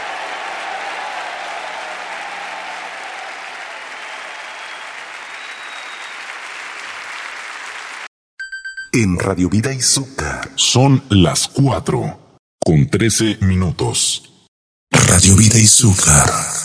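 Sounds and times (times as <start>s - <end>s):
crowd applauding: 0.0s - 8.1s
speech: 9.0s - 14.4s, 15.1s - 16.6s.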